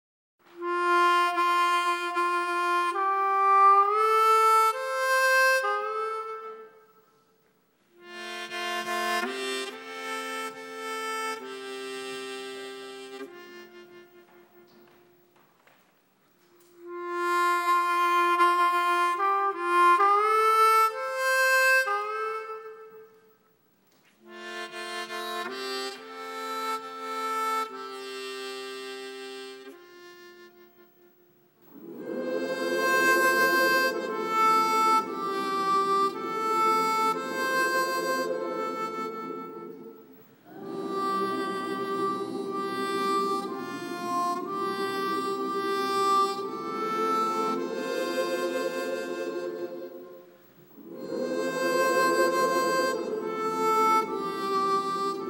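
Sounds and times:
harmonica: 0:00.5 - 0:15.2, 0:16.4 - 0:23.5, 0:24.2 - 0:55.2
gospel choir singing: 0:31.7 - 0:55.2.

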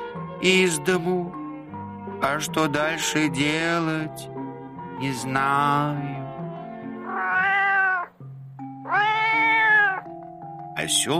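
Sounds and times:
speech: 0:00.4 - 0:01.4, 0:02.2 - 0:04.3, 0:05.0 - 0:06.2, 0:10.8 - 0:11.1
cat meowing: 0:07.0 - 0:08.2, 0:08.8 - 0:10.1.

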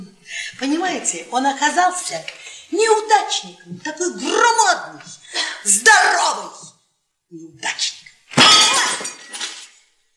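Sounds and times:
speech: 0:00.6 - 0:06.6, 0:07.3 - 0:08.0
glass bottle smashed against a bar: 0:08.3 - 0:09.8.

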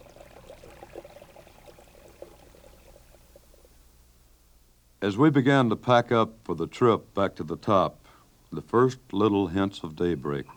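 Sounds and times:
small streams trickling down through rocks: 0:00.0 - 0:03.3
speech: 0:05.0 - 0:10.5.

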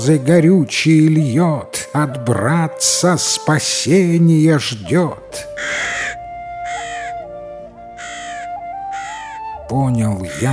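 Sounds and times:
speech: 0:00.0 - 0:06.1, 0:09.7 - 0:10.5
raven cawing harshly: 0:05.5 - 0:09.6, 0:10.2 - 0:10.5.

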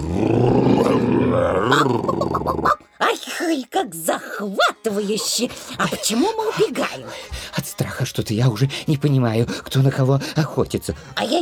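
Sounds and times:
tiger cub roaring: 0:00.0 - 0:02.8
speech: 0:03.6 - 0:11.3.

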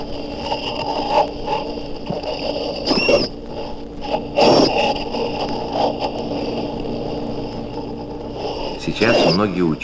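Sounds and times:
steady underwater hum and crackle: 0:00.0 - 0:09.8
sirenian sea cow squeaks and squeals: 0:02.8 - 0:03.3
speech: 0:09.0 - 0:09.8.

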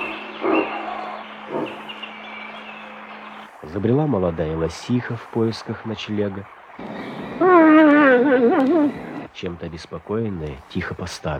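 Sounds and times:
wild boar giving gruff barks: 0:00.0 - 0:03.5, 0:06.8 - 0:09.3
faint night outdoor hiss: 0:00.0 - 0:11.3
speech: 0:03.6 - 0:07.0, 0:08.2 - 0:11.3.

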